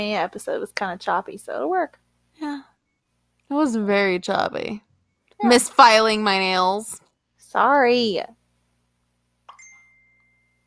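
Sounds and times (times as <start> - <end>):
speech: 0.0 - 2.7, 3.5 - 8.4
phone notification ding: 9.5 - 10.6.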